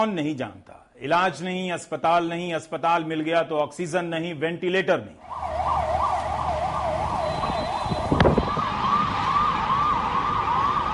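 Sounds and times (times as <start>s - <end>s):
speech: 0.0s - 5.8s
ambulance siren wailing: 5.2s - 10.9s
low traffic rumble: 5.2s - 10.9s.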